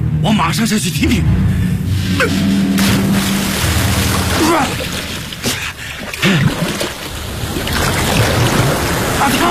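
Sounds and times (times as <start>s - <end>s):
speech: 0.2s - 3.4s, 4.4s - 4.9s, 9.2s - 9.4s
sea waves washing around a stopped boat: 1.4s - 9.4s
faint splashes: 2.8s - 9.4s.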